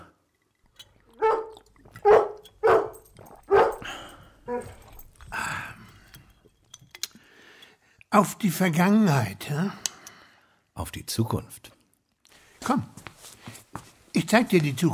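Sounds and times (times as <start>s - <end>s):
dog barking: 1.2s - 3.9s, 4.5s - 4.8s
speech: 8.1s - 9.8s, 10.8s - 11.8s, 12.7s - 13.0s, 14.2s - 14.9s.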